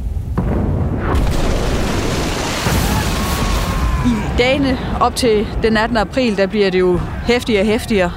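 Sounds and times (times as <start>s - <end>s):
heavy artillery cannon boom with long rumbling roar: 0.2s - 5.8s
speech: 4.4s - 8.1s.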